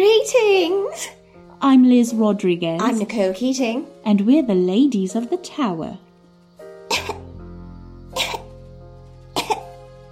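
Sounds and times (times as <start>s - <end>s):
speech: 0.0s - 6.0s
person coughing: 6.9s - 7.3s, 8.2s - 8.5s, 9.4s - 9.6s.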